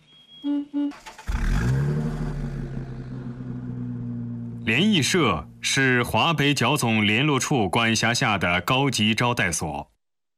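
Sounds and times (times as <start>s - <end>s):
speech: 0.4s - 1.2s, 4.7s - 9.9s
car engine revving as the car drives off: 1.0s - 6.1s.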